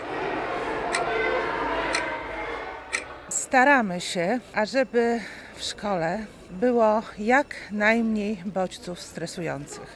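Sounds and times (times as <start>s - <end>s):
constant murmur of room noise: 0.0s - 9.9s
wall clock ticking at a primary school in Białystok, Poland: 0.9s - 1.1s, 1.9s - 2.1s, 2.9s - 3.1s
speech: 3.5s - 9.9s.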